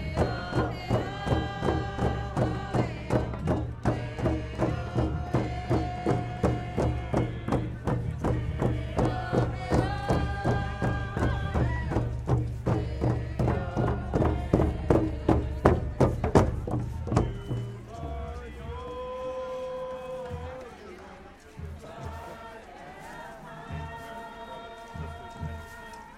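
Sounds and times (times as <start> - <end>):
steady pounding drum at an outdoor performance: 0.0 - 18.9
loud group singing at an outdoor performance: 0.0 - 26.1.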